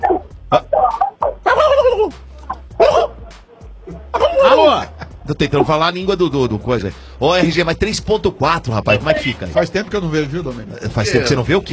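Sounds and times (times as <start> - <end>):
chicken clucking and squawking: 0.8 - 1.8
laughter: 3.9 - 5.6
speech: 5.3 - 11.7.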